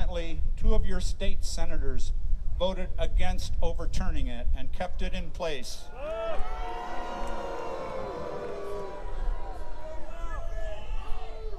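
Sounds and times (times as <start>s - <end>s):
speech: 0.7s - 6.5s
large audience booing: 5.9s - 11.5s.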